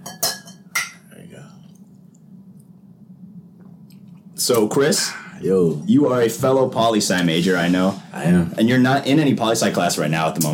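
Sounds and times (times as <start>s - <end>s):
glasses clinking in a toast: 0.0s - 1.1s
low murmur of room noise: 0.0s - 10.5s
speech: 4.4s - 10.5s.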